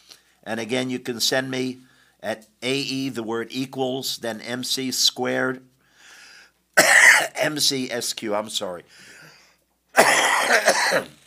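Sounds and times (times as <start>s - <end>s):
speech: 0.4s - 5.7s, 6.8s - 9.2s, 10.0s - 11.2s
harsh coughing: 6.8s - 7.6s, 9.9s - 11.2s.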